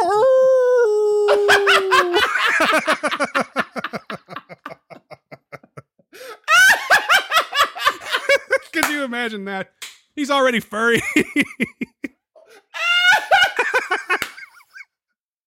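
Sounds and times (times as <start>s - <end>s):
person imitating a werewolf howl: 0.0s - 2.3s
person laughing: 1.2s - 8.8s, 11.0s - 12.1s, 12.8s - 14.8s
speech: 9.2s - 11.8s.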